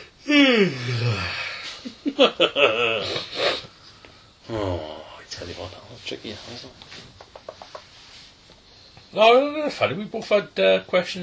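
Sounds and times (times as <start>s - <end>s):
breathy wheezy exhales: 0.0s - 1.8s, 3.0s - 4.9s
speech: 0.2s - 1.4s, 2.2s - 3.6s, 4.5s - 7.1s, 9.1s - 11.2s
person yawning in an exaggerated vocalized way: 0.2s - 1.8s, 4.5s - 5.1s.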